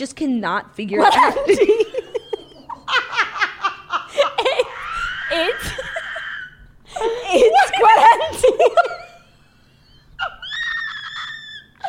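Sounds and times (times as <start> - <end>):
speech: 0.0 - 2.1
laughter: 1.0 - 11.8
person screaming: 4.6 - 6.6.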